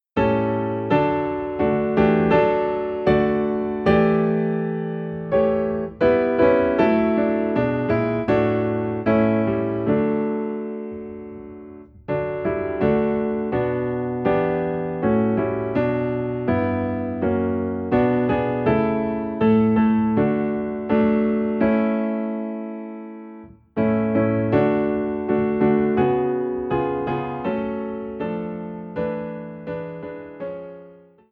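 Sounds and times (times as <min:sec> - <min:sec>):
Christmas piano piece in D: 0:00.0 - 0:31.3.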